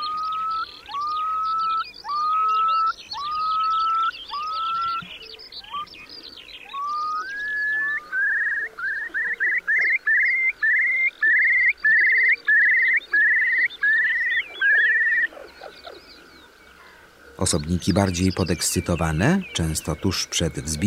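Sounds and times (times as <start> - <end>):
calm bird on the ground singing short rising whistled notes: 0.0 - 6.0, 6.6 - 15.3
other birds chirping faintly: 0.0 - 20.8
speech: 17.4 - 20.8.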